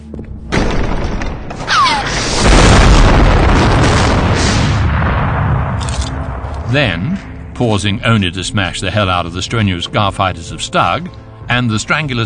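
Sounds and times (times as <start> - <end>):
massive bomb explosion: 0.5 - 7.6
speech: 6.7 - 12.2.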